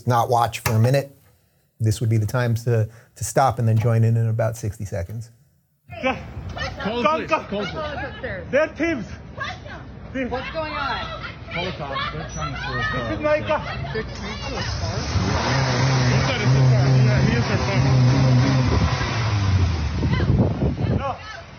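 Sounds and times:
speech: 0.0s - 1.2s, 1.8s - 5.4s, 6.0s - 16.6s, 17.4s - 18.3s
street noise: 6.0s - 21.5s
agitated voices talking and shouting: 10.4s - 17.3s
car engine revving as car is hijacked: 14.5s - 21.5s.

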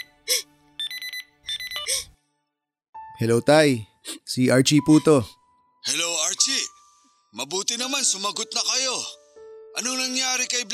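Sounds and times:
mobile phone ringtone of bright warbling electronic tones: 0.8s - 2.1s
speech: 3.2s - 6.1s, 7.9s - 9.2s, 9.8s - 10.7s.

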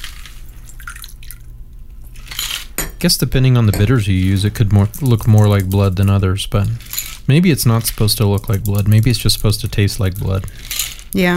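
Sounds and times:
cocktail trickling and dripping into a small glass: 0.7s - 1.5s
speech: 3.0s - 11.3s.

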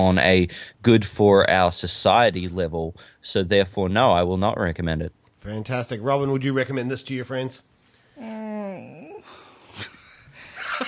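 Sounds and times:
speech: 0.0s - 9.0s
groan of pain: 8.2s - 9.4s.

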